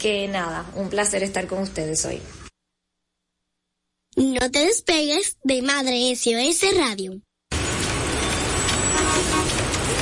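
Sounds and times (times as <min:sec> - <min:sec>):
speech: 0:00.0 - 0:02.5, 0:04.2 - 0:07.3
loud steady roar of congested street traffic: 0:07.5 - 0:10.0
car horns sounding in traffic: 0:07.6 - 0:10.0.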